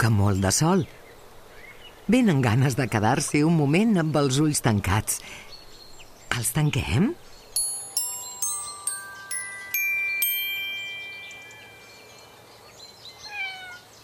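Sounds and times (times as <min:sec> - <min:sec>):
speech: 0:00.0 - 0:01.0, 0:02.1 - 0:05.5, 0:06.3 - 0:07.2
bright chime-like notes: 0:07.6 - 0:12.5
small thin kitten meowing: 0:13.3 - 0:13.8.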